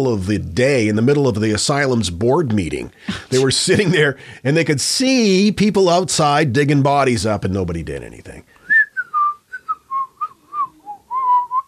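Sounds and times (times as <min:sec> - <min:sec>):
speech: 0:00.0 - 0:08.5
laughter: 0:03.1 - 0:04.2
person whistling a short wavering tune: 0:08.6 - 0:11.6.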